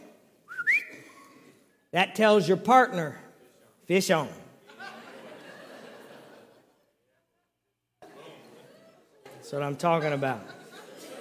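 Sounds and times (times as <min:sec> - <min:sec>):
single short rising whistle from a person: 0:00.5 - 0:01.2
speech: 0:01.9 - 0:03.2, 0:03.9 - 0:04.4, 0:09.5 - 0:10.6
laughter: 0:04.6 - 0:11.1.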